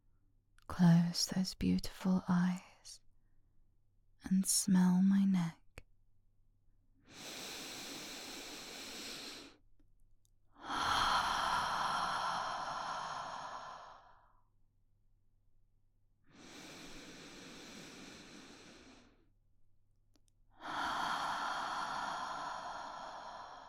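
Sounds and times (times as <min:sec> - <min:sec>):
speech: 0:00.7 - 0:03.0, 0:04.2 - 0:05.6
slow deep breathing: 0:07.1 - 0:09.6, 0:10.6 - 0:14.3, 0:16.3 - 0:19.3, 0:20.6 - 0:23.6.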